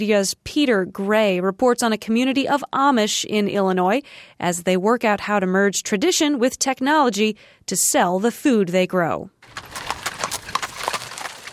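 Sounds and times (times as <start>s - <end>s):
speech: 0.0s - 9.9s
hooves of horses pulling Amish buggies clip-clopping: 9.4s - 11.5s.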